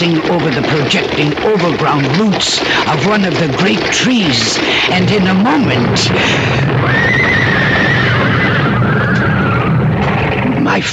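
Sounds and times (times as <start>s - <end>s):
speech: 0.0s - 7.8s, 10.7s - 10.9s
steady loud rumbling: 0.0s - 10.9s
panicked lead horse pulling a rig whinnying: 5.7s - 10.5s.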